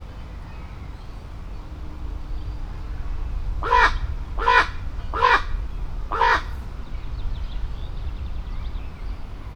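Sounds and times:
owl calling at Veszprem Zoo: 1.6s - 9.0s.

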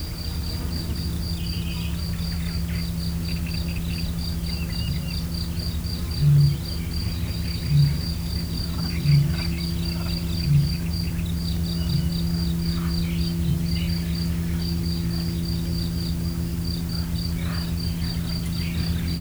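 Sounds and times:
field cricket chirping in nature: 0.0s - 19.1s.

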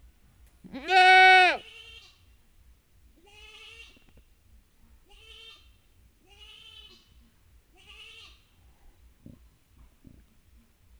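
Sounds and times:
domestic goat kid bleat calling for its mother in a farmyard: 0.7s - 2.2s, 3.2s - 4.0s, 6.3s - 7.2s, 7.8s - 8.5s.

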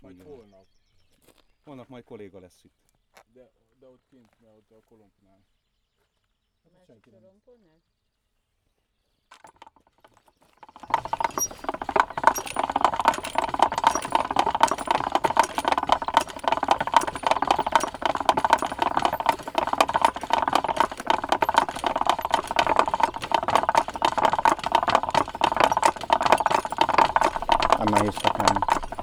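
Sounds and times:
distant railway crossing barrier being lowered: 10.8s - 29.0s.

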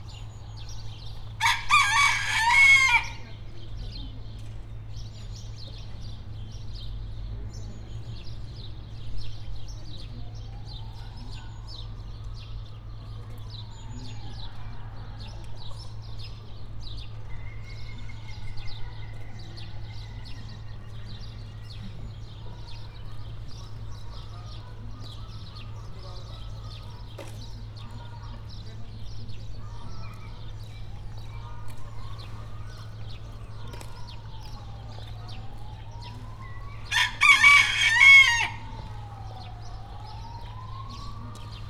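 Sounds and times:
rooster crowing: 1.4s - 3.3s, 35.7s - 41.3s.

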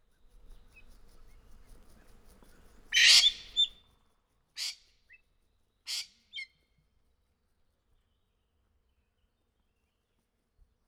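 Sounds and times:
golden pheasant shrieking loudly in a zoo: 2.9s - 3.7s, 5.9s - 6.5s.

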